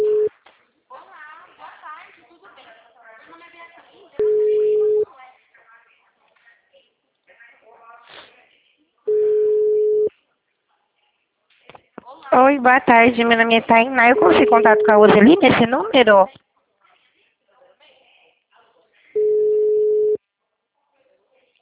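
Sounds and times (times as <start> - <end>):
ringback tone of an outgoing telephone call: 0.0 - 0.3, 4.2 - 5.0, 9.1 - 10.1, 13.4 - 16.0, 19.2 - 20.2
speech: 12.4 - 16.4.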